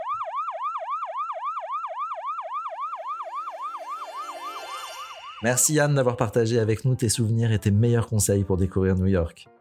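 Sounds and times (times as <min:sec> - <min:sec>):
fire truck siren yelping in New York: 0:00.0 - 0:05.9
speech: 0:05.4 - 0:09.5.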